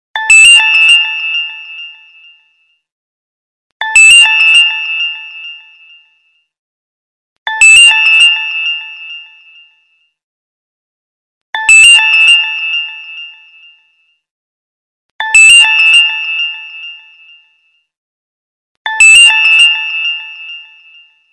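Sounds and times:
cool sound effect ringtone: 0.2s - 2.9s, 3.8s - 6.6s, 7.5s - 10.2s, 11.6s - 14.3s, 15.2s - 17.9s, 18.9s - 21.3s.

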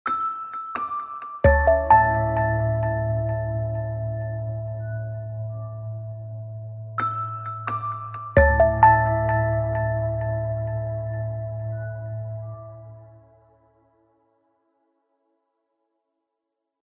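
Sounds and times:
Nokia music ringtone: 0.1s - 5.3s, 7.0s - 13.1s.

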